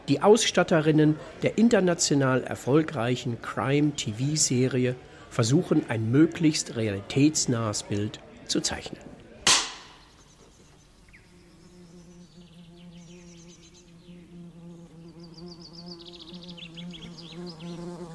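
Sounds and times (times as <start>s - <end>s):
speech: 0.1s - 9.1s
wasp buzzing in a garden: 11.0s - 18.1s.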